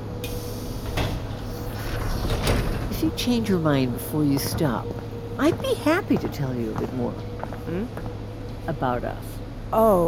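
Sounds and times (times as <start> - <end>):
loud rumble of subway train noise: 0.0 - 10.0
subway train doors sliding shut: 0.1 - 3.4
speech: 3.0 - 10.0.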